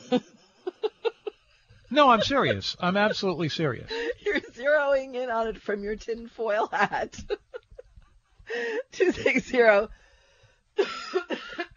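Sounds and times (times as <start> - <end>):
laughter: 0.0 - 4.7, 5.7 - 9.8
speech: 2.0 - 7.4, 8.6 - 10.0
loud throaty coughs: 10.8 - 11.7.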